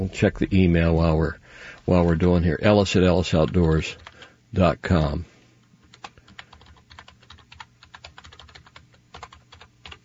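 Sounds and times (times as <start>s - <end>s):
speech: 0.0s - 5.3s
low hum: 0.0s - 10.0s
typing on a computer keyboard: 3.4s - 4.3s, 5.8s - 10.0s.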